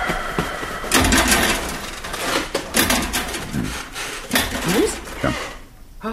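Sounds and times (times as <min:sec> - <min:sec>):
bed springs creaking and rattling: 0:00.0 - 0:05.7
clattery knocks: 0:00.9 - 0:05.2.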